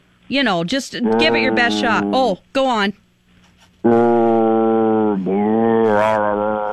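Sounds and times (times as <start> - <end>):
speech: 0.3 - 3.0, 3.8 - 4.2
man's voice imitating the moan of a headless man: 1.0 - 2.3, 3.8 - 6.7.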